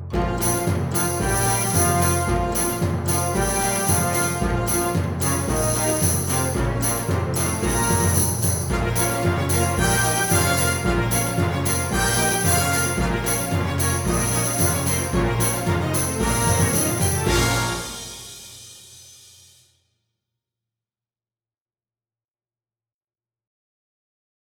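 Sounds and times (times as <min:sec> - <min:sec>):
Russian folk song: 0:00.1 - 0:18.7.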